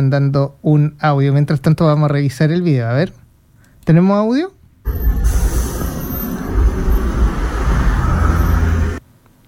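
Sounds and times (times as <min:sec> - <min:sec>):
speech: 0:00.0 - 0:03.2, 0:03.9 - 0:05.0
slow road traffic rumble on a downhill road: 0:04.9 - 0:09.0.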